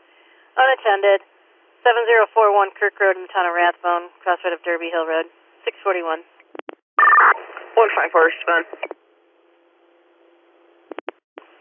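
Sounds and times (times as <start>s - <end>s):
speech: 0.6s - 6.3s, 7.8s - 9.0s
radio dispatch alert tones: 7.0s - 7.4s
hissing band-limited radio static: 7.1s - 9.0s.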